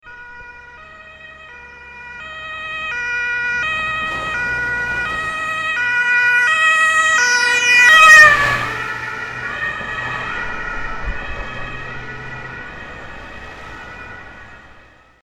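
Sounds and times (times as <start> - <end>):
medical ambulance siren: 0.0 - 15.2.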